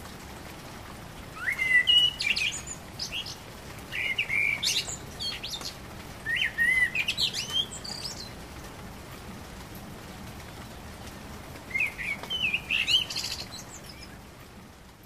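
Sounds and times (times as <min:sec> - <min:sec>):
common blackbird song: 0:01.4 - 0:08.7, 0:10.5 - 0:14.3.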